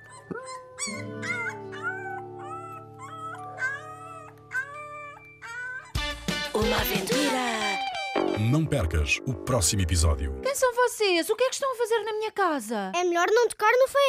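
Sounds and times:
young wolf whimpering howls: 0:00.0 - 0:05.9
speech: 0:06.6 - 0:07.5, 0:08.4 - 0:14.0.

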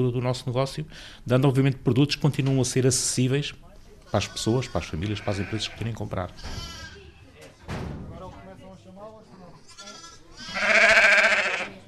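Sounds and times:
speech: 0:00.0 - 0:06.8
sheep bleating in a barn: 0:04.1 - 0:07.2, 0:09.7 - 0:11.8.

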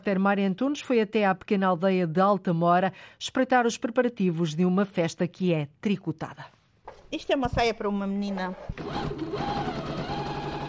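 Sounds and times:
speech: 0:00.0 - 0:09.9
sewing machine stitching items for the almond blossom festival in Alta Mora, Castro Marim: 0:08.2 - 0:10.6.

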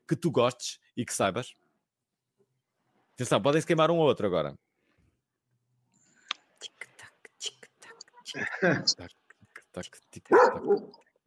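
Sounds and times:
speech: 0:00.1 - 0:01.6, 0:03.2 - 0:04.7, 0:08.3 - 0:09.2, 0:09.8 - 0:11.0
soft breathy whispering: 0:06.3 - 0:10.6
dog barking: 0:10.3 - 0:11.0.

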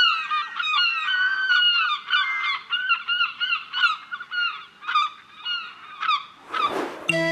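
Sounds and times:
crowd of seagulls squawking and crying: 0:00.0 - 0:06.7
short rough burst of noise: 0:06.4 - 0:07.3.

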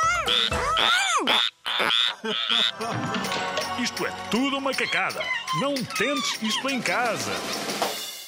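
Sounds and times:
frogs croaking in a dense chorus: 0:00.3 - 0:02.8
speech: 0:00.3 - 0:07.8.

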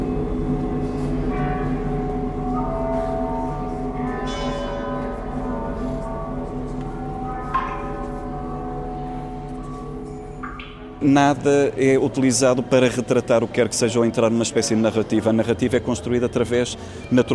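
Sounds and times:
layered bell tones in a sound art installation: 0:00.0 - 0:12.7
speech: 0:11.0 - 0:17.3.

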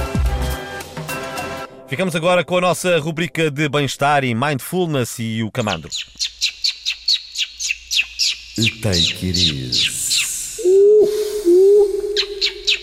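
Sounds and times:
speech: 0:01.9 - 0:06.5, 0:08.6 - 0:10.0
small birds chirping and singing in quick high notes: 0:05.6 - 0:12.8.

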